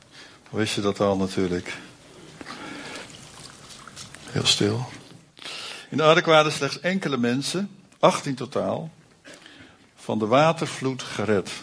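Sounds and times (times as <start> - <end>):
speech: 0.5 - 1.9, 4.4 - 5.0, 5.9 - 9.0, 10.1 - 11.6
small gurgles and clinks: 2.2 - 5.1
water pouring: 2.2 - 5.3.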